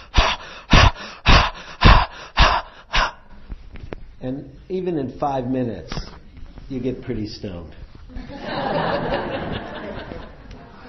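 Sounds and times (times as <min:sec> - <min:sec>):
rapid forceful deep breathing for a breathwork meditation technique: 0:00.0 - 0:03.6
speech: 0:04.2 - 0:06.1, 0:06.7 - 0:09.3
laughter: 0:08.1 - 0:10.8.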